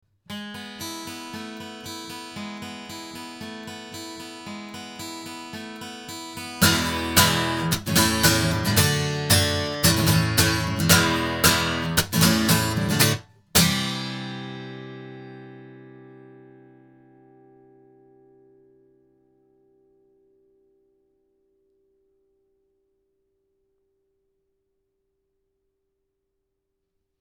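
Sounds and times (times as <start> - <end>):
guitar: 0.2 - 24.0.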